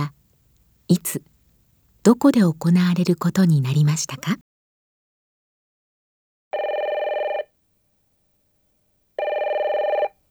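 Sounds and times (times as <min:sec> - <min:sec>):
speech: 0:00.9 - 0:01.3, 0:02.0 - 0:04.4
electronic telephone ringing for a call: 0:06.6 - 0:07.5, 0:09.2 - 0:10.2.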